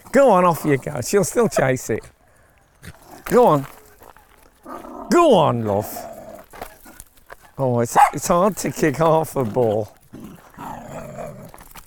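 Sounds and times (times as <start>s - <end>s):
speech: 0.1s - 2.2s, 2.8s - 3.8s, 5.1s - 6.1s, 7.6s - 10.0s
female dog giving a growly bark: 7.9s - 8.3s.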